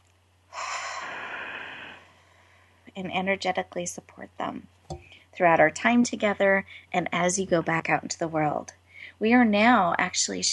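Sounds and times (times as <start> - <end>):
group taking one deep breath in together: 0.6 - 2.8
speech: 3.0 - 10.5.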